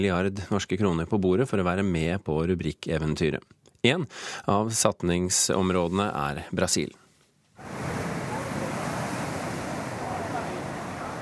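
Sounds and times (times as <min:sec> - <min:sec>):
speech: 0:00.0 - 0:07.0
ocean surf breaking on a beach: 0:07.6 - 0:11.1.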